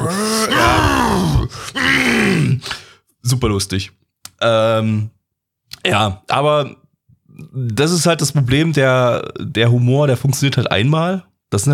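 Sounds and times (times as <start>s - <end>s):
man imitating bodybuilder grunting and roaring: 0.0s - 2.7s
speech: 3.3s - 5.2s, 5.8s - 11.7s.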